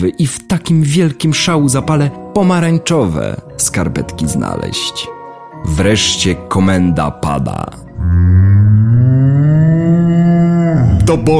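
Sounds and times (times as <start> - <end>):
speech: 0.0 - 8.4, 11.1 - 11.3
cow mooing: 7.9 - 11.1.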